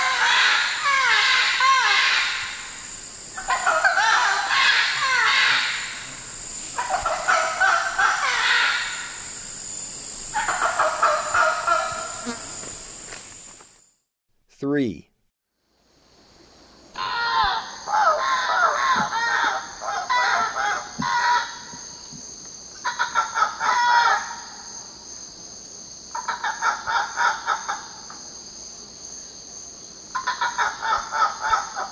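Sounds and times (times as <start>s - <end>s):
red-throated caracara raucous cackling calls in eastern lowlands of South America: 0.0s - 9.4s, 10.3s - 12.6s, 16.9s - 22.2s, 22.8s - 24.7s, 26.1s - 28.2s, 30.1s - 31.9s.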